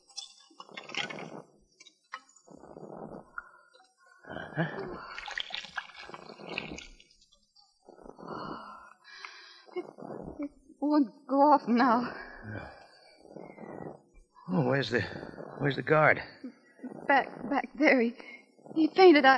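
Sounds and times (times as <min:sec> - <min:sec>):
liquid poured off from a green jade vase, splashing and gurgling: 0:04.5 - 0:07.3
speech: 0:04.6 - 0:05.3, 0:10.9 - 0:12.2, 0:14.6 - 0:16.4, 0:17.1 - 0:19.3.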